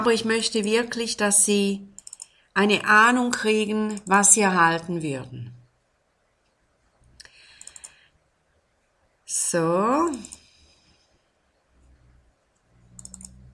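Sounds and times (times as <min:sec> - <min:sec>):
speech: 0:00.0 - 0:01.9, 0:02.6 - 0:05.6, 0:09.3 - 0:10.4
quick light clicks on a laptop: 0:07.5 - 0:08.0, 0:13.0 - 0:13.4.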